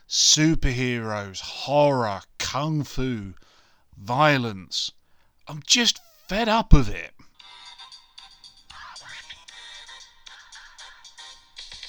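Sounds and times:
speech: 0:00.1 - 0:07.2
bright electronic phone ringtone melody: 0:07.4 - 0:11.8.

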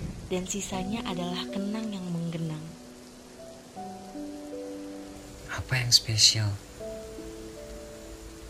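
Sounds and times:
steady soft rain: 0:00.0 - 0:08.4
speech: 0:00.3 - 0:02.8, 0:05.6 - 0:06.7
gentle sustained musical tones: 0:00.5 - 0:08.4.

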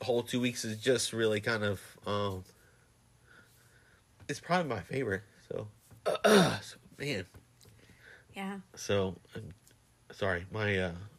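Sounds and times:
speech: 0:00.0 - 0:02.6, 0:04.3 - 0:07.4, 0:08.4 - 0:11.1
person clearing throat: 0:06.0 - 0:06.7
person coughing in rough raspy bursts: 0:06.1 - 0:06.7.

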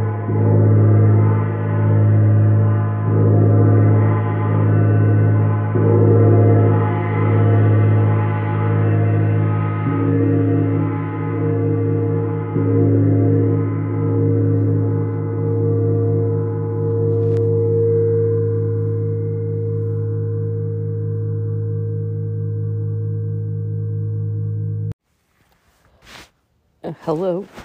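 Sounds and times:
large gongs ringing low: 0:00.0 - 0:25.0
brief scraping handling sounds: 0:25.2 - 0:26.4, 0:27.0 - 0:27.6.

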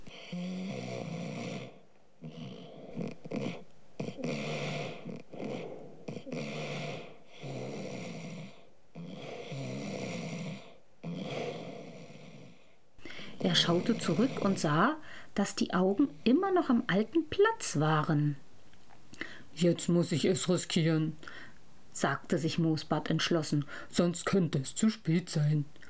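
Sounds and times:
loud rasping snoring of sleeping characters: 0:00.1 - 0:12.8, 0:13.4 - 0:14.9
speech: 0:00.3 - 0:00.6, 0:13.5 - 0:18.4, 0:19.6 - 0:25.8.

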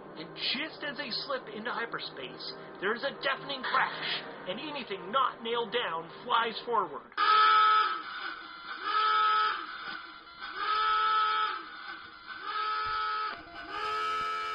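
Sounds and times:
speech: 0:00.2 - 0:07.3
spaceship electronic alarm pulsing: 0:07.2 - 0:14.5.

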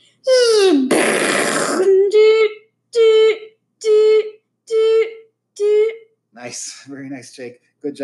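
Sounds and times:
child imitating missile explosion: 0:00.3 - 0:04.2
child imitating sirens: 0:01.8 - 0:06.1
speech: 0:06.4 - 0:08.0.

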